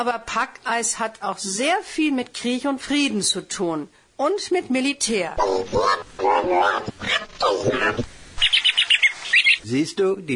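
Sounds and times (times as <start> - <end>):
speech: 0.0 - 8.1, 9.7 - 10.3
parrot squawking: 5.4 - 9.7.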